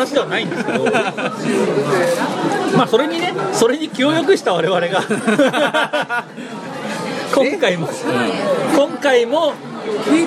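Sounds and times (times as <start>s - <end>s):
busy chatter of several voices in a crowded bar: 0.0s - 10.2s
speech: 0.0s - 10.2s
laughter: 0.2s - 2.7s, 4.2s - 7.6s.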